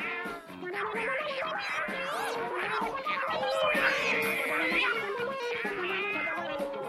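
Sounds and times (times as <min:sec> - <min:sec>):
several cats yowling and screeching in a brawl: 0:00.0 - 0:06.8.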